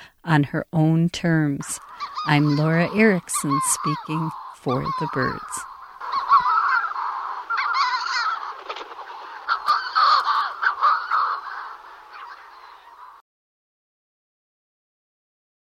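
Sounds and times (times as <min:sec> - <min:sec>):
speech: 0:00.2 - 0:05.7
Manx shearwater harsh wheezy cackling calls: 0:01.8 - 0:13.2.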